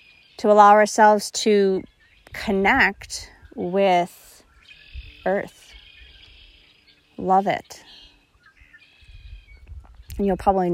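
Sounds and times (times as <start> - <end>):
birds chirping and warbling outdoors: 0.0 - 10.7
speech: 0.4 - 4.2, 5.2 - 5.6, 7.2 - 7.8, 10.2 - 10.7
low rumbling wind or handling noise: 1.0 - 6.6, 8.6 - 10.7.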